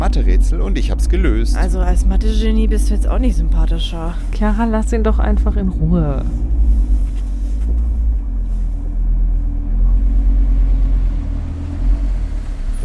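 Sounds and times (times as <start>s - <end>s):
car engine rumble heard from inside the vehicle: 0.0s - 12.8s
road drone: 0.0s - 12.8s
speech: 0.1s - 6.6s.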